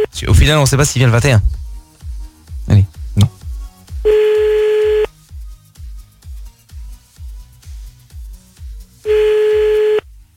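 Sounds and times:
speech: 0:00.0 - 0:01.6
soft regular low thumping beat: 0:00.0 - 0:05.6, 0:07.2 - 0:10.3
telephone ringing tones: 0:04.1 - 0:05.1, 0:09.1 - 0:10.0.

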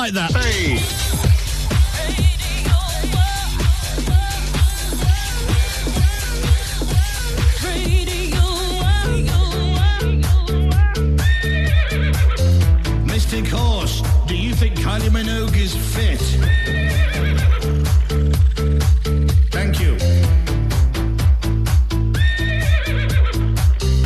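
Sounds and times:
speech: 0:00.0 - 0:01.3
steady rhythmic backing: 0:00.0 - 0:24.0
horse neighing and whinnying: 0:16.4 - 0:18.8, 0:22.1 - 0:23.5.

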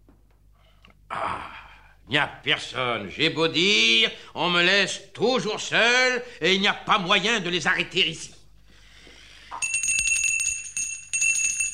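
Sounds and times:
speech: 0:02.1 - 0:08.4
small hand bell ringing: 0:09.6 - 0:11.7.

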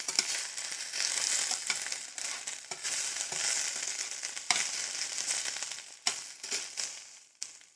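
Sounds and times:
frying in a pan with water and soy sauce over low heat: 0:00.0 - 0:07.7.

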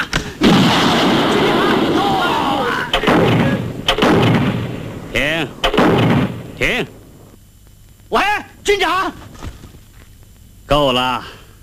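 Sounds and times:
artillery shelling barrage in a wartime battle: 0:00.4 - 0:07.4
heavy artillery shell blasts: 0:00.4 - 0:07.4
speech: 0:06.6 - 0:07.0, 0:08.1 - 0:09.2, 0:10.7 - 0:11.4.

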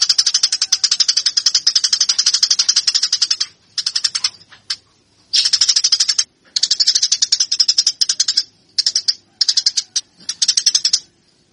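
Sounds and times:
Eurasian tree sparrow fighting call harsh chirps: 0:00.0 - 0:11.5.

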